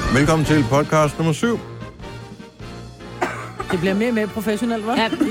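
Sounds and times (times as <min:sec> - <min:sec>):
speech: 0:00.2 - 0:01.7, 0:03.7 - 0:05.2
coughs with an apple in the mouth: 0:03.1 - 0:03.9.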